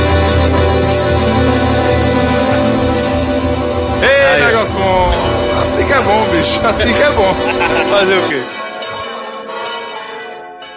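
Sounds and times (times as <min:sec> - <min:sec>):
church bell ringing: 0:00.0 - 0:10.7
laughter: 0:04.0 - 0:10.2
speech: 0:06.4 - 0:08.6.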